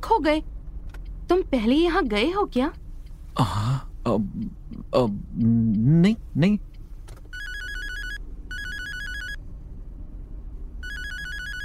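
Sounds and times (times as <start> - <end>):
car engine low rumble: 0.0 - 11.6
speech: 0.1 - 0.6, 1.3 - 2.8, 3.4 - 6.7
mobile phone ringtone: 7.3 - 9.4, 10.8 - 11.6.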